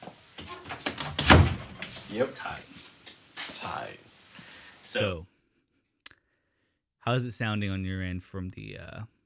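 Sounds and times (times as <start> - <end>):
door pushed shut with a thud: 0.0 - 2.4
speech: 2.1 - 2.8, 3.6 - 4.1, 4.9 - 5.3, 7.0 - 9.2.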